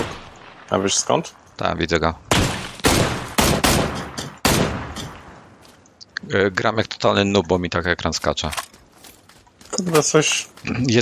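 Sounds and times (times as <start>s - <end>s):
video game gunshots from an enemy firing at the player: 0.0s - 1.2s, 2.3s - 5.6s
speech: 0.7s - 2.4s, 6.3s - 8.7s, 9.8s - 11.0s.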